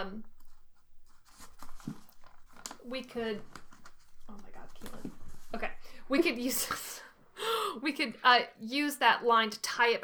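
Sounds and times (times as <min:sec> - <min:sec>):
speech: 0:00.0 - 0:00.4, 0:02.8 - 0:03.6, 0:04.3 - 0:06.9, 0:07.7 - 0:10.0
piece of paper crinkling and crackling: 0:00.0 - 0:06.8.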